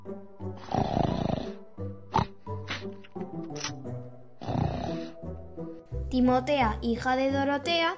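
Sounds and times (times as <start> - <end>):
loud rasping snoring: 0.5 - 2.4, 4.4 - 5.2
speech: 6.2 - 7.9.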